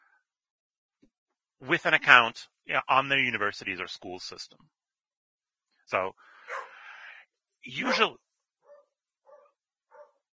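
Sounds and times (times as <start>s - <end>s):
speech: 1.6s - 4.8s, 5.9s - 6.7s, 7.6s - 8.2s
dogs barking excitedly: 6.5s - 6.8s, 8.7s - 10.2s.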